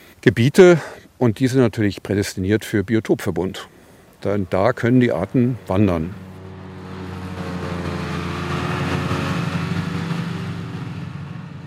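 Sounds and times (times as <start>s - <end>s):
speech: 0.2s - 6.2s
large tractor droning over meadow: 3.7s - 11.6s
modern mowing unit whirring while harvesting hay in the Dobertal: 4.8s - 11.6s.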